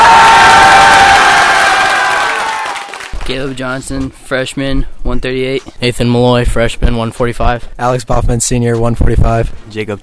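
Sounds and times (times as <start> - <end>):
crowd cheering and yelling for the team: 0.0 - 3.4
speech: 3.3 - 10.0.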